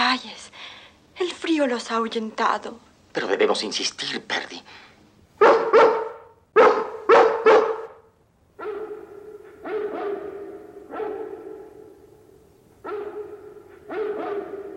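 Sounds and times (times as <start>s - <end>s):
speech: 0.1s - 4.8s
Great Dane barking in reply: 5.4s - 12.2s, 12.8s - 14.7s.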